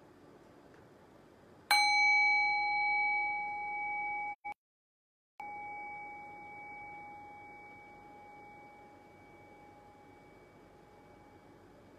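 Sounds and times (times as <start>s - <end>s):
meditation bell ringing: 1.7s - 4.5s, 5.4s - 11.9s.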